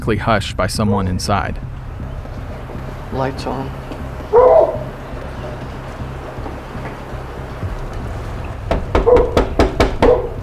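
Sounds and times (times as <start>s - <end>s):
speech: 0.0s - 1.8s, 3.1s - 4.5s
dog barking from behind a wall inside an apartment: 4.3s - 4.9s, 9.0s - 10.4s
sharp knocking: 8.6s - 10.4s.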